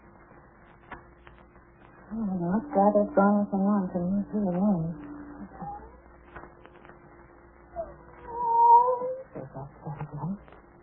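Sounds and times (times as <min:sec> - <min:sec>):
low room noise: 0:00.0 - 0:10.8
voices: 0:02.0 - 0:06.9, 0:07.8 - 0:10.6
speech: 0:02.1 - 0:05.1
cat meowing: 0:07.8 - 0:09.4.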